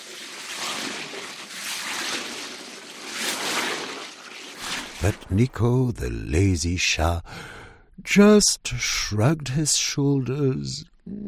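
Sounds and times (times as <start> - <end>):
elephant sucking water up its trunk: 0.0 - 5.2
speech: 5.0 - 11.2.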